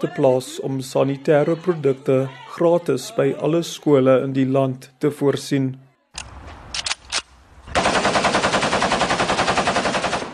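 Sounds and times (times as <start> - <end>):
speech: 0.0 - 5.8
R5 automatic rifle shots at a police shooting range outside Pretoria: 6.2 - 10.3
R5 automatic rifle burst of automatic fire at a police shooting range: 7.7 - 10.3.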